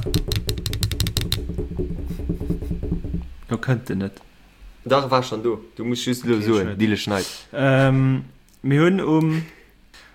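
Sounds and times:
drum roll: 0.0s - 3.7s
low rhythmic thumping: 0.0s - 3.7s
speech: 3.5s - 9.6s.

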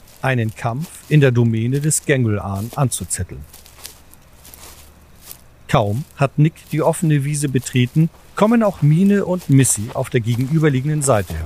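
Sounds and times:
footsteps of a person walking out from the trees in a park on leaves or grass: 0.0s - 11.4s
low hush: 0.0s - 11.4s
speech: 0.2s - 3.6s, 5.7s - 11.4s.

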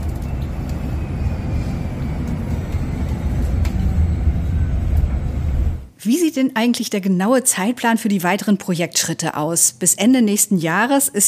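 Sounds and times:
quiet electric city bus driving: 0.0s - 5.9s
speech: 6.1s - 11.2s.

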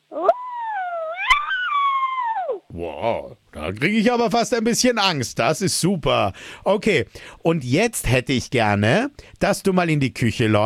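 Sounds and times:
person imitating a menacing wolf howl: 0.1s - 2.7s
speech: 2.8s - 10.6s.

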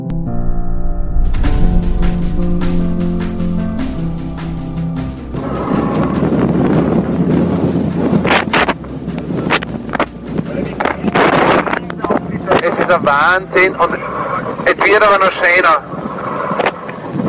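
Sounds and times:
steady tones: 0.1s - 8.2s
strong wind buffeting the microphone during a race around Ireland: 0.1s - 17.2s
speech: 12.9s - 14.0s, 14.9s - 16.0s.

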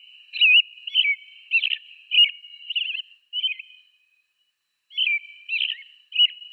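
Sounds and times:
American robin singing: 0.0s - 6.5s.

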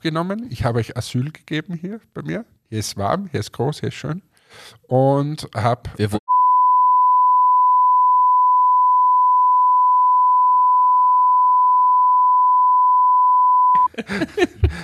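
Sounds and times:
speech: 0.0s - 6.3s, 14.0s - 14.8s
censor beep tone: 6.2s - 13.9s
laughter: 13.8s - 14.8s.

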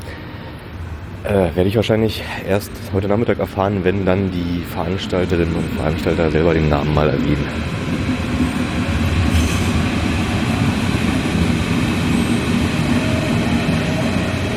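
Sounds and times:
S-Bahn commuter train rumbling at the platform: 0.0s - 14.5s
speech: 1.2s - 8.1s
hiss: 9.2s - 12.6s.

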